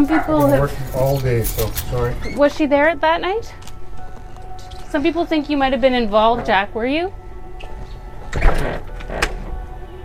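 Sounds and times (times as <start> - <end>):
speech: 0.0 - 3.7, 4.9 - 7.2
house door scraping and thudding shut: 8.3 - 9.6.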